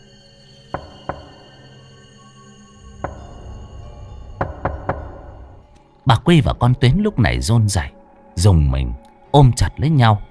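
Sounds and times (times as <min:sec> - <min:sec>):
low hum: 0:00.0 - 0:08.3
speech: 0:00.7 - 0:00.9, 0:06.1 - 0:10.3
knocking on a room door at night: 0:00.8 - 0:01.6, 0:03.0 - 0:05.7.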